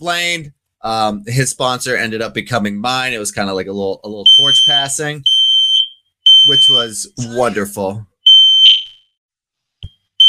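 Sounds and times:
speech: 0:00.0 - 0:05.4, 0:06.4 - 0:08.1
high-pitched smoke alarm beeping: 0:04.3 - 0:06.9, 0:08.2 - 0:09.1.

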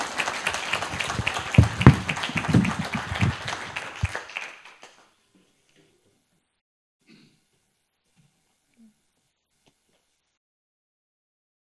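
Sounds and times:
audience applause: 0:00.0 - 0:05.1.

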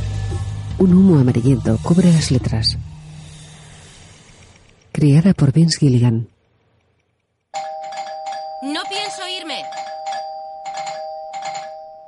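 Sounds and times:
speech: 0:00.8 - 0:02.9, 0:05.0 - 0:06.3
doorbell ringing: 0:07.6 - 0:12.0.

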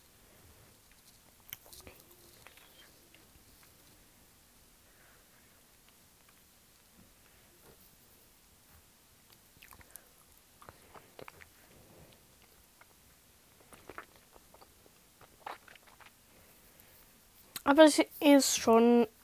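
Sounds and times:
faint hiss: 0:00.0 - 0:19.2
someone chewing and sucking a gummy snake candy: 0:00.8 - 0:03.8, 0:09.3 - 0:16.9
speech: 0:17.7 - 0:19.1.

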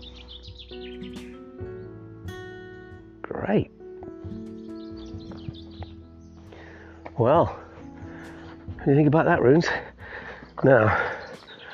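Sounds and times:
bird chirps: 0:00.0 - 0:02.5, 0:04.1 - 0:09.1, 0:10.2 - 0:11.7
male songbird singing to attract mate: 0:00.0 - 0:11.7
speech: 0:03.5 - 0:03.8, 0:07.2 - 0:07.6, 0:08.8 - 0:09.9, 0:10.6 - 0:11.1.

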